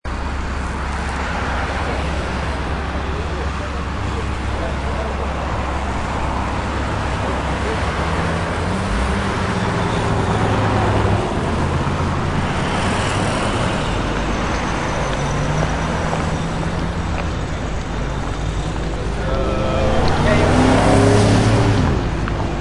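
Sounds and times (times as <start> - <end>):
city traffic: 0.0 - 22.5.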